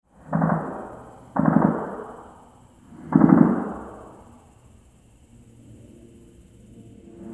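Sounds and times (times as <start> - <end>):
gunfire: 0.3 - 2.2, 3.0 - 3.9.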